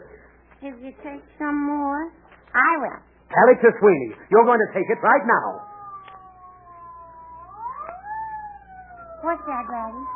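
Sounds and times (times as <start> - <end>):
speech: 0.6 - 5.7, 9.3 - 10.1
ambulance siren wailing: 5.5 - 10.1.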